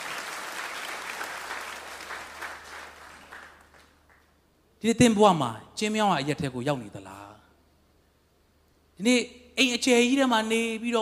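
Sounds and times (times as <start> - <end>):
church congregation clapping hands in praise: 0.0 - 4.4
speech: 4.8 - 7.4, 9.0 - 11.0.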